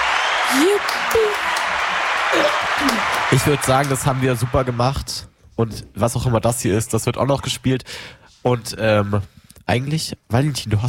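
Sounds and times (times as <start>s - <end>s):
dense audience applause: 0.0s - 5.2s
speech: 0.5s - 10.8s.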